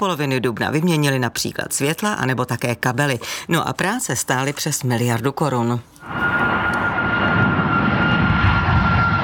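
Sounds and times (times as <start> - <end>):
speech: 0.0 - 6.5
airplane engine roar with sustained whine: 6.0 - 9.2.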